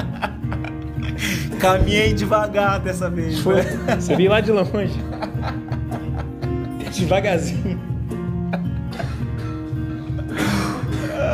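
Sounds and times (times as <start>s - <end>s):
laughter: 0.0s - 2.4s, 3.2s - 11.3s
speech: 1.6s - 5.2s, 7.0s - 7.9s
person coughing in short harsh bursts: 8.9s - 9.6s, 10.3s - 11.3s.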